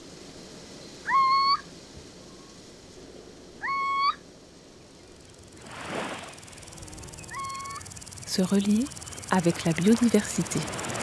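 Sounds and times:
Little Owl calling with short level whistled hoots in the Bouches-du-Rhône, France: 0:01.0 - 0:01.7, 0:03.6 - 0:04.2, 0:07.2 - 0:07.9
speech: 0:08.4 - 0:10.9.

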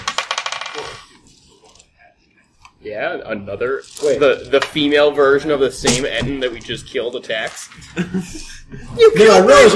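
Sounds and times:
dice clattering across a hard tabletop: 0:00.0 - 0:01.8, 0:03.7 - 0:07.8
speech: 0:02.8 - 0:09.7
laughter: 0:07.7 - 0:09.7.

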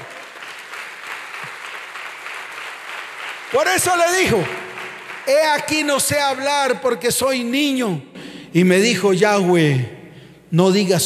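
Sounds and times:
church audience applauding: 0:00.0 - 0:06.5
speech: 0:03.5 - 0:04.7, 0:05.3 - 0:11.0.

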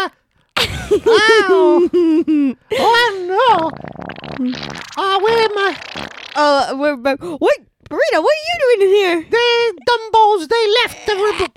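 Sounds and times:
speech: 0:00.9 - 0:11.5
voice making fart noises: 0:03.4 - 0:06.8.

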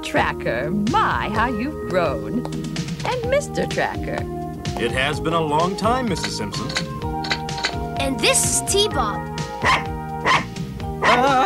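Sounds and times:
speech: 0:00.1 - 0:06.8, 0:08.1 - 0:09.9
dog barking: 0:09.6 - 0:11.3.

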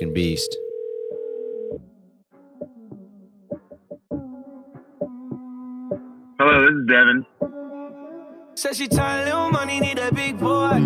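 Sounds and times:
speech: 0:00.0 - 0:00.6, 0:06.4 - 0:07.3, 0:08.6 - 0:10.8
telephone steady electronic dial tone: 0:00.5 - 0:01.8.

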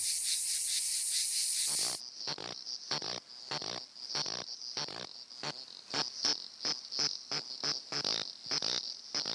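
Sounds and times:
loud hiss: 0:00.0 - 0:02.0
cicada song of short sharp buzzy pulses in the Kenyan steppe: 0:00.0 - 0:09.3.

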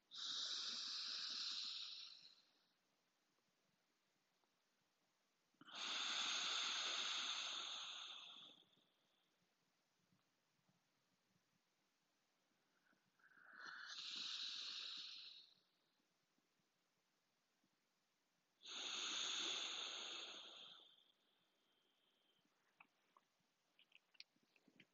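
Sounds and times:
long airy breath pushed out through right nostril in yoga breathing exercise: 0:00.1 - 0:02.4, 0:05.7 - 0:08.7, 0:13.2 - 0:15.7, 0:18.6 - 0:21.2.

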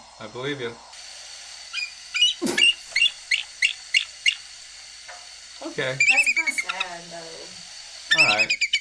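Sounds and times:
speech: 0:00.2 - 0:00.9, 0:05.8 - 0:08.7
bald eagle chattering call: 0:01.7 - 0:04.6, 0:05.8 - 0:07.1, 0:08.1 - 0:08.7.

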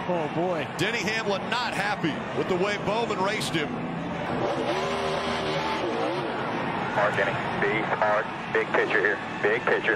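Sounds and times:
speech: 0:00.1 - 0:05.5, 0:07.0 - 0:09.9
race car tire squeal in a burnout: 0:00.6 - 0:09.8
race car engine revving hard: 0:01.1 - 0:09.4.

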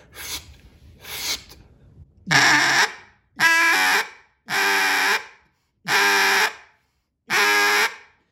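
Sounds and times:
duck call blown as a calling demonstration: 0:02.3 - 0:06.7, 0:07.3 - 0:08.2.

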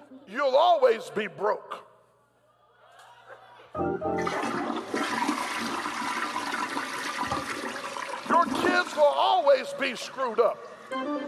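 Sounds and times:
speech: 0:00.3 - 0:01.8, 0:08.4 - 0:11.2
laughter: 0:02.6 - 0:04.0
toilet flushing: 0:04.2 - 0:10.9.

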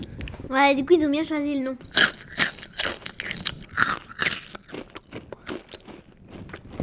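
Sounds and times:
speech: 0:00.5 - 0:02.1
breakfast cereal crunching while being chewed: 0:01.8 - 0:06.8.

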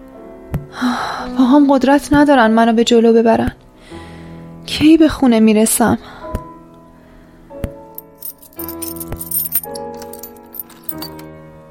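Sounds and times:
speech: 0:00.5 - 0:03.6, 0:04.7 - 0:06.2
keys jangling while unlocking a door: 0:08.0 - 0:11.3.

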